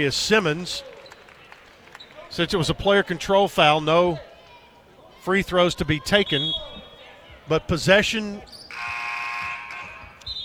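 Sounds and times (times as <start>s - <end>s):
speech: 0.0s - 0.9s, 2.3s - 4.3s, 5.2s - 6.8s, 7.5s - 8.6s
electronic buzzer droning through a large arena: 8.7s - 10.0s.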